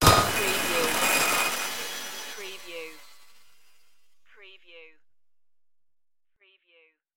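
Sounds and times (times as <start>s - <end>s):
abstract digital morph: 0.2s - 4.0s.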